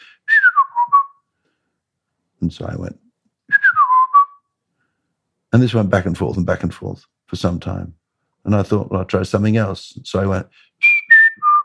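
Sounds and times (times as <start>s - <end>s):
person whistling an imitation of blackbird song: 0.2s - 1.2s, 3.5s - 4.4s, 10.8s - 11.6s
speech: 2.4s - 3.0s, 5.5s - 10.8s.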